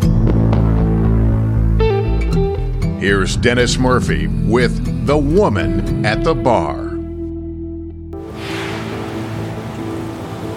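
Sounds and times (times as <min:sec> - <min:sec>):
low droning tone: 0:00.0 - 0:08.2
speech: 0:03.0 - 0:06.8
ocean waves breaking on a white-sand beach on a sunny day: 0:08.2 - 0:10.5.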